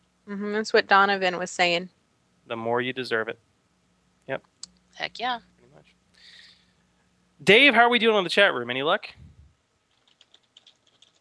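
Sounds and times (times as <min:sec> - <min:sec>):
speech: 0:00.3 - 0:03.5, 0:04.3 - 0:05.5, 0:07.4 - 0:09.2
rapid typing on a computer keyboard: 0:09.9 - 0:11.1.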